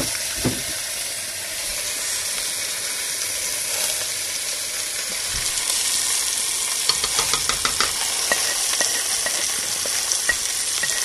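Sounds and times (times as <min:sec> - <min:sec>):
meat sizzling while searing in hot oil: 0:00.0 - 0:11.0.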